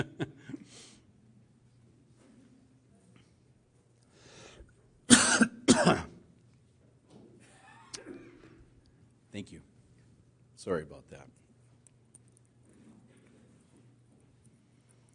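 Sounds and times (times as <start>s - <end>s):
speech: 0.0s - 0.5s, 9.4s - 9.7s, 10.6s - 11.4s
person breathing: 4.1s - 4.7s
person coughing: 5.1s - 6.2s.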